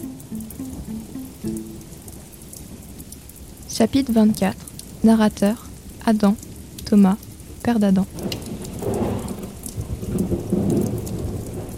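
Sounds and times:
heavy rain pouring: 0.0 - 11.7
speech: 3.8 - 8.4
low rolling thunder rumbling: 8.2 - 11.7.

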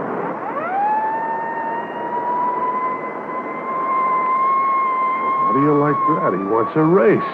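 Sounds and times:
police car siren wailing: 0.0 - 7.3
speech: 5.6 - 7.3.

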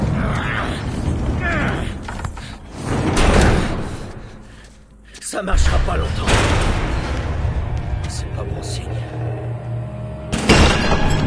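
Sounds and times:
heavy doors grinding and creaking as they are barricaded: 0.0 - 11.2
speech: 5.4 - 6.8, 8.4 - 9.4.

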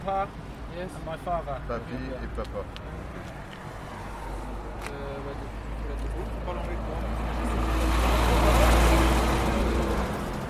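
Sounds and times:
speech: 0.0 - 3.4, 4.8 - 7.7
moving truck engine running in traffic: 2.6 - 10.4.

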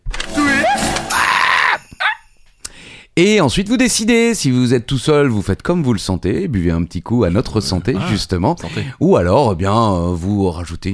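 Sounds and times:
people screaming on cue during a game segment: 0.4 - 2.2
speech: 3.2 - 10.9.

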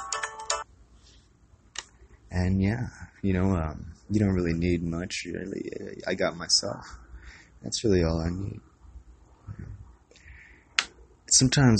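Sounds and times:
faint cell phone ringtone of bright electronic notes: 0.0 - 0.7
speech: 2.4 - 7.0, 7.6 - 8.7, 11.4 - 11.7.

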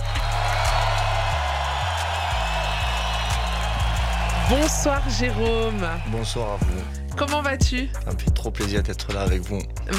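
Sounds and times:
crowd applause: 0.0 - 6.9
speech: 4.5 - 9.9.

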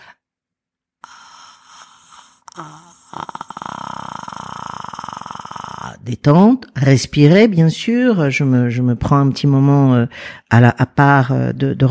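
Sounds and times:
person's deep raspy throat drone in vocal warm-up: 1.0 - 6.1
speech: 2.6 - 3.3, 6.1 - 11.8.

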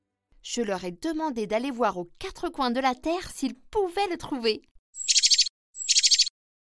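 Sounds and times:
speech: 0.4 - 5.1
arriving sparrow chirping: 5.0 - 6.3.

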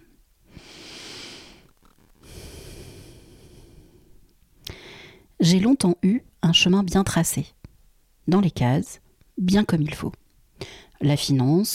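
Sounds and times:
long deep breaths drawn in close to the mic: 0.5 - 5.3
speech: 5.4 - 7.6, 8.3 - 11.7.

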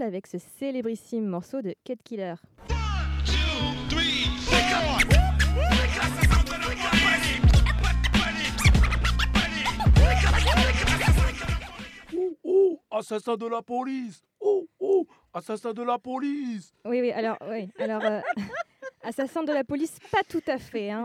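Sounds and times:
speech: 0.0 - 5.0, 13.0 - 21.0
bass-heavy hip-hop beat: 2.6 - 12.2
DJ scratching a vinyl record on a turntable: 4.3 - 12.1
laughter: 8.8 - 11.8, 17.3 - 20.0.

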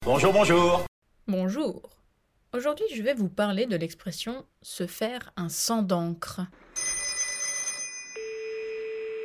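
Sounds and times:
speech: 0.1 - 6.9
telephone ringing: 6.8 - 9.2.

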